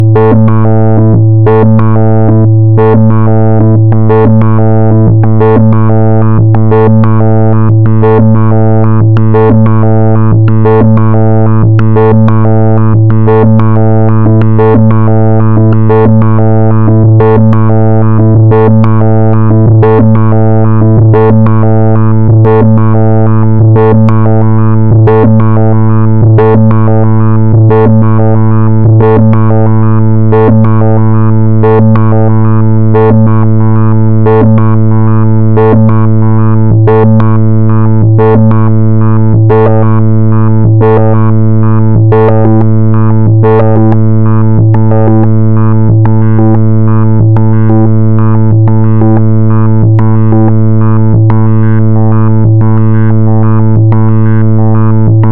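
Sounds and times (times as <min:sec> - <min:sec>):
stepped filter effect: 0:00.0 - 0:55.2.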